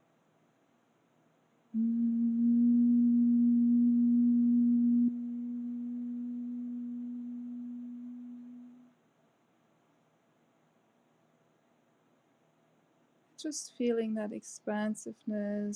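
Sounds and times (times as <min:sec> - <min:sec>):
gentle low vocal hum: 0:01.8 - 0:08.9
speech: 0:13.5 - 0:15.7.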